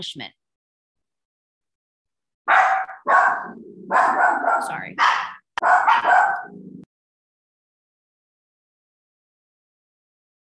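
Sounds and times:
speech: 0.0 - 0.4
dog barking and growling: 2.5 - 6.9.

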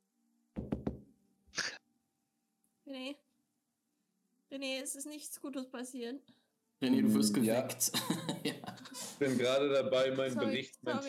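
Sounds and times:
knocking on a door: 0.6 - 1.1
speech: 2.9 - 3.2, 4.5 - 11.0
laughter: 7.8 - 10.3.

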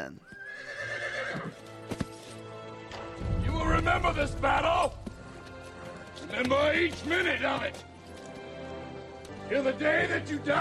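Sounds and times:
speech: 0.0 - 0.8, 3.8 - 5.0, 6.2 - 7.9, 9.5 - 10.6
horse hooves clopping: 0.0 - 10.6
horse whinnying as it is mounted at San Jacinto Creek in Texas: 0.2 - 1.6.

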